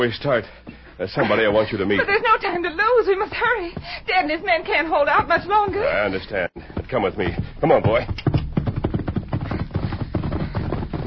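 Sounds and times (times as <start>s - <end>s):
speech: 0.0s - 8.2s
horse hooves clip-clopping: 4.6s - 11.0s.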